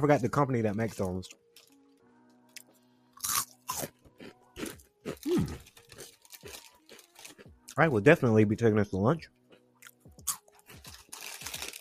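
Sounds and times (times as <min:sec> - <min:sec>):
speech: 0:00.0 - 0:01.4, 0:05.3 - 0:05.7, 0:07.8 - 0:09.4
crunching on a spicy puffed corn snack: 0:02.5 - 0:07.6, 0:09.8 - 0:11.7.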